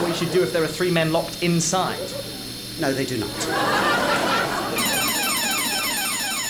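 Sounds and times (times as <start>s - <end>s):
laughter: 0.0s - 5.8s
noisy commotion: 0.0s - 6.4s
speech: 0.2s - 4.0s
refrigerator security system alarm, electronic tone in falling sweeps: 4.8s - 6.4s.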